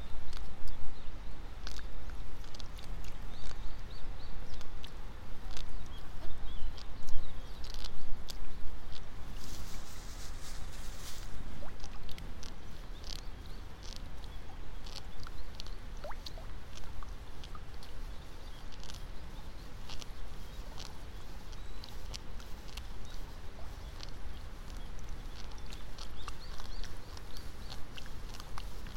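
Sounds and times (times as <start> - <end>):
birds calling faintly: 0.0 - 28.9
soft splashes and wet rustling of rice seedlings pulled by hand in a flooded seedbed: 1.6 - 28.9.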